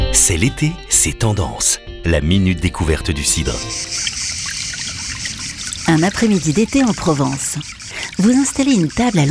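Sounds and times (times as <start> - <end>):
speech: 0.1 - 4.2, 5.9 - 9.2
murmuring water from a fountain: 3.5 - 9.2.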